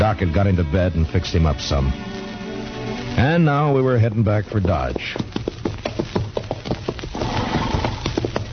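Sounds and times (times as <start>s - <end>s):
speech: 0.1s - 2.2s, 3.2s - 5.3s
horse hooves stomping and clopping: 1.4s - 8.5s
horse whinnying: 7.1s - 8.4s.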